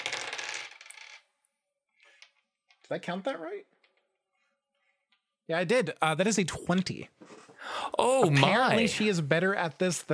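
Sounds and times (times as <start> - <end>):
dice rolling on a table: 0.0 - 2.9
speech: 2.9 - 3.8, 5.5 - 10.1.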